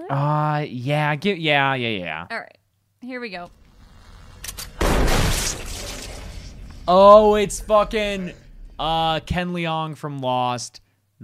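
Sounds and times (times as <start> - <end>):
speech: 0.0 - 3.6, 6.9 - 11.2
shotgun blasts in a film scene: 4.7 - 6.4.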